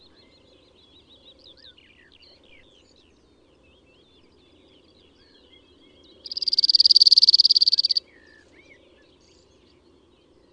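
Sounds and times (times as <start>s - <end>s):
cirl bunting singing a dry rattling trill: 6.3s - 8.0s.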